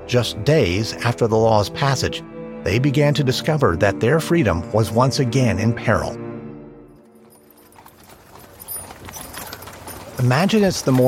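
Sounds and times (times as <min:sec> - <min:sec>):
speech: 0:00.1 - 0:06.2, 0:10.2 - 0:11.0
horse hooves clip-clopping on a hard street: 0:06.9 - 0:11.0.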